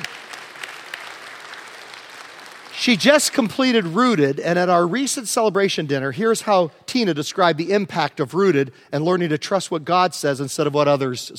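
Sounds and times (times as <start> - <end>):
church crowd applause: 0.0 - 3.4
speech: 2.8 - 11.3.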